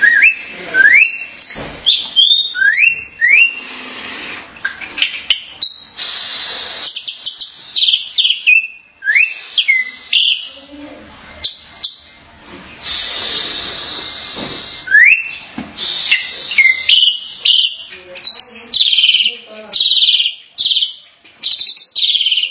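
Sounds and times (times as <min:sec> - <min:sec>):
starling singing whistles, chips and squeaks: 0:00.0 - 0:03.7, 0:05.0 - 0:06.0, 0:06.7 - 0:10.8, 0:11.4 - 0:12.2, 0:14.9 - 0:22.5.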